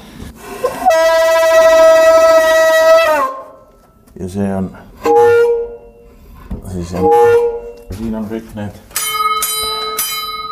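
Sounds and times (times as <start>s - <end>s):
foghorn blast: 0.8s - 3.6s, 5.0s - 6.1s, 6.9s - 7.9s
speech: 4.2s - 4.8s, 6.8s - 8.9s.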